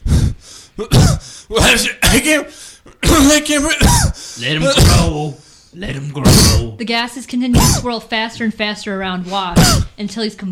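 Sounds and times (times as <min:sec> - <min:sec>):
raspy coughing and throat clearing: 0:00.8 - 0:05.2, 0:06.2 - 0:06.8, 0:07.5 - 0:07.9, 0:09.6 - 0:10.0
speech: 0:00.8 - 0:10.5.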